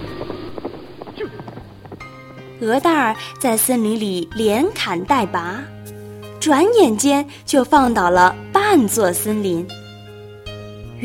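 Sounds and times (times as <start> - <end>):
horse hooves clopping while pulling a cart: 0.0 - 3.2
speech: 2.6 - 5.8, 6.4 - 9.8.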